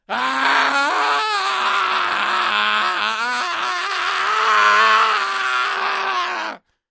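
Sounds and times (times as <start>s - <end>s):
burning person screaming: 0.0s - 6.6s.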